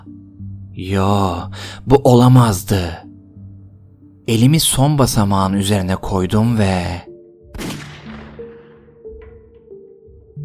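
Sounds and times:
speech: 0:00.8 - 0:03.0, 0:04.3 - 0:07.1
gunshot sound effect with long decay: 0:07.5 - 0:09.4.

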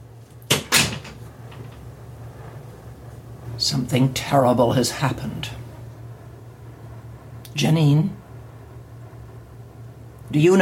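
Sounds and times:
door pushed shut with sharp thuds: 0:00.5 - 0:01.2
speech: 0:03.6 - 0:05.6, 0:07.6 - 0:08.2, 0:10.3 - 0:10.6.

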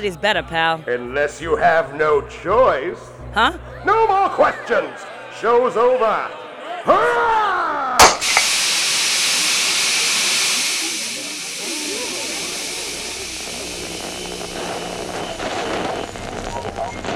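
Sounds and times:
speech: 0:00.0 - 0:07.4
loud burst of steam hissing: 0:08.0 - 0:17.1.

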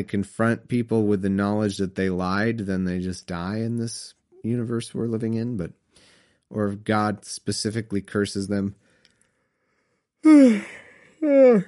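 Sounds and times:
speech: 0:00.0 - 0:05.8, 0:06.5 - 0:08.8, 0:10.2 - 0:11.6
person yawning: 0:10.3 - 0:11.6.

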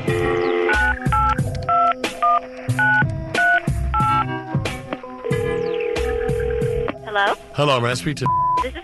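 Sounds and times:
telephone touch-tone dialing beeps: 0:00.2 - 0:04.3, 0:05.3 - 0:06.9, 0:08.3 - 0:08.8
speech: 0:07.6 - 0:08.3.

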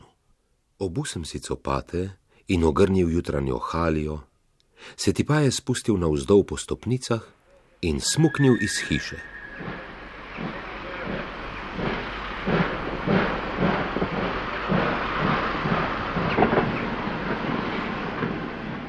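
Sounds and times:
speech: 0:00.8 - 0:10.6
train rumbling: 0:07.9 - 0:18.8
hissing roar of passing train: 0:08.0 - 0:18.8
train wheels clattering over rail joints: 0:09.6 - 0:18.8.

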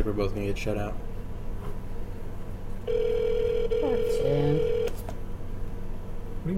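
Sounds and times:
speech: 0:00.0 - 0:01.8, 0:03.8 - 0:04.8
low steady hum: 0:00.0 - 0:06.5
electronic telephone tone of an outgoing call ringing: 0:02.9 - 0:05.1.

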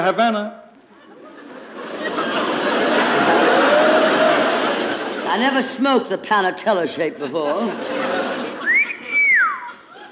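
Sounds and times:
speech: 0:00.0 - 0:00.6, 0:05.3 - 0:08.0
laughter: 0:00.9 - 0:10.1
man whistling to hail a cab: 0:08.6 - 0:09.8.

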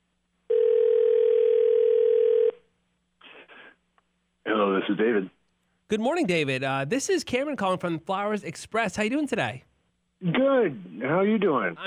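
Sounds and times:
electronic ringback tone on a phone line for an outgoing call: 0:00.5 - 0:02.6
speech: 0:04.8 - 0:11.8.

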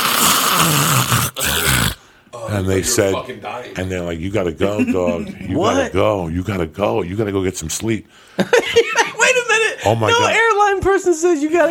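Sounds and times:
person imitating loud snoring: 0:00.0 - 0:02.0
speech: 0:02.6 - 0:11.7
laughter: 0:04.6 - 0:05.8, 0:08.4 - 0:09.7.

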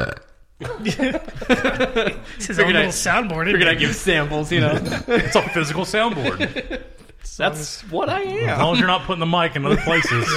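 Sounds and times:
voiced burp with a throaty wavering tone: 0:00.0 - 0:00.5
speech: 0:00.0 - 0:10.3
laughter: 0:00.6 - 0:10.3.

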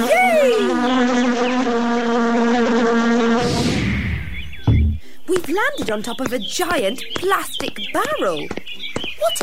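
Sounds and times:
bee buzzing in flight: 0:00.0 - 0:03.7
speech: 0:05.7 - 0:09.4.

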